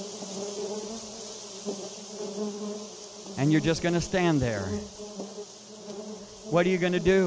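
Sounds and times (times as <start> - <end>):
bee buzzing and droning while hovering: 0.0 - 7.2
speech: 3.4 - 5.0, 6.5 - 7.2.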